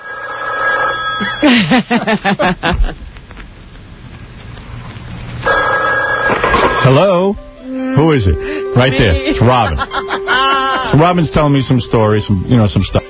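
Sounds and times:
telephone ringing in a fast warbling trill: 0.0 - 1.5, 5.4 - 7.2
laughter: 1.2 - 3.0, 9.0 - 11.2
speech: 1.2 - 3.1, 6.9 - 10.0, 10.9 - 13.0.

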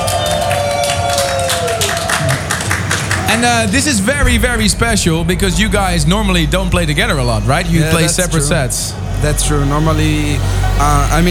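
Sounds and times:
festival crowd applauding and cheering at an outdoor trance music festival in Utrecht: 0.0 - 4.4
speech: 3.3 - 11.2.

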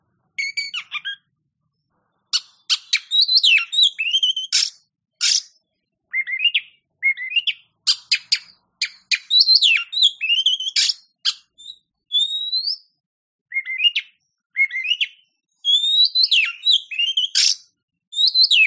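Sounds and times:
Oriental magpie-robin singing: 0.4 - 1.3, 2.3 - 18.6.

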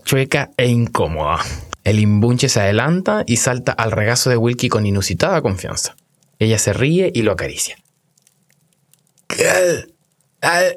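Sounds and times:
speech: 0.1 - 7.8, 9.3 - 10.7
man clearing throat: 9.3 - 9.9.

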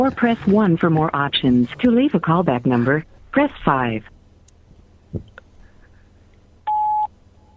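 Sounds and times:
speech: 0.0 - 4.2
voicemail recording beep tone: 6.7 - 7.5.

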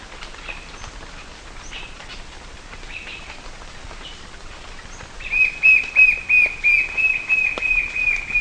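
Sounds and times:
forest background sounds: 0.0 - 8.3
white-shouldered fire-eye Pyriglena leucoptera singing: 5.3 - 8.3.

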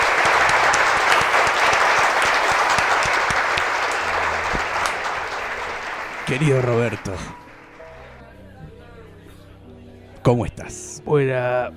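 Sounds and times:
crowd applauding at a tribute event: 0.0 - 8.1
speech: 6.3 - 7.4, 10.3 - 11.7.

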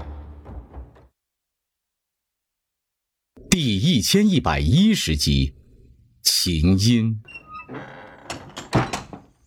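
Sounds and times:
speech: 3.5 - 5.6, 6.3 - 7.9
wooden door being closed: 7.7 - 9.3
knocks and rattles: 7.7 - 9.4.

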